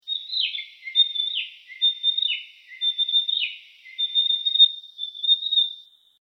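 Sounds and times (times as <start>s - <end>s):
bird calling high thin notes: 0.0s - 5.9s.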